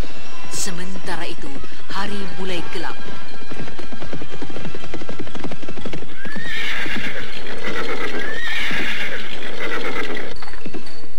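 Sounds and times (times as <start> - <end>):
speech: 0.6 - 3.3
cavalry horses' hooves clip-clopping: 3.1 - 11.0
cavalry troop horses neighing and whinnying: 4.5 - 10.5.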